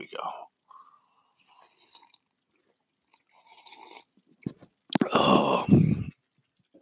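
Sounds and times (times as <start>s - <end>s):
slurping and sipping black coffee: 1.3s - 2.3s, 3.1s - 6.2s.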